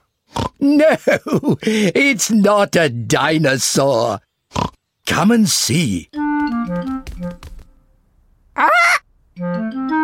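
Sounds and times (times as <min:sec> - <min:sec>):
speech: 0:00.6 - 0:06.9
bright stepping melodic music: 0:06.1 - 0:07.7, 0:09.4 - 0:10.0
pet parrot squawking: 0:08.6 - 0:09.1.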